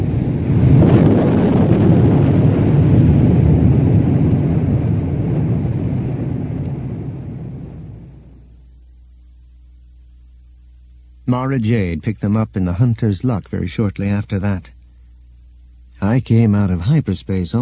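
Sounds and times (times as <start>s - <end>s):
massive explosion with deep rumble: 0.0s - 8.4s
speech: 11.3s - 14.8s, 16.0s - 17.6s.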